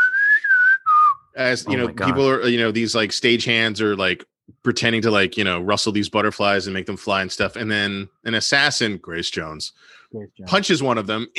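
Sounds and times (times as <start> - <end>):
person whistling in imitation of a lounge singer whistling to butterflies: 0.0 - 1.9
speech: 1.4 - 11.3.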